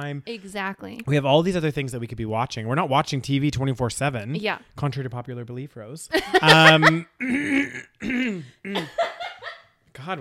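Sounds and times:
speech: 0:00.0 - 0:09.3, 0:10.0 - 0:10.1
laughter: 0:06.2 - 0:07.1, 0:08.7 - 0:09.7
person with a clogged throat clearing throat: 0:06.6 - 0:09.0.

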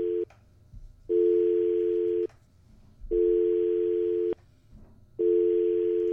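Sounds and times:
telephone line tone while testing phone lines: 0:01.1 - 0:02.3, 0:03.2 - 0:04.4, 0:05.2 - 0:06.1.

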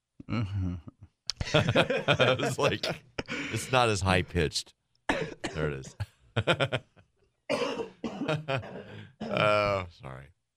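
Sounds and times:
speech: 0:00.3 - 0:04.8, 0:05.6 - 0:06.9, 0:08.3 - 0:10.4
laughter: 0:01.4 - 0:03.0, 0:06.4 - 0:07.0
harsh raspy coughing into a microphone: 0:05.1 - 0:06.1, 0:07.5 - 0:09.6.

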